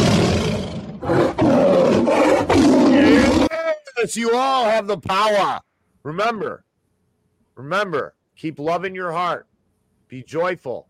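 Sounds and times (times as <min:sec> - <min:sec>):
tiger roaring: 0:00.0 - 0:03.5
speech: 0:04.0 - 0:06.7, 0:07.6 - 0:09.5, 0:10.1 - 0:10.8.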